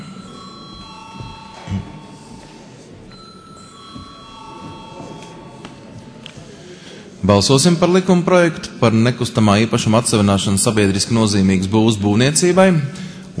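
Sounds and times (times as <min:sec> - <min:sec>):
bell ringing in a parliament chamber to call a vote: 0:00.0 - 0:06.3
speech: 0:07.2 - 0:13.3.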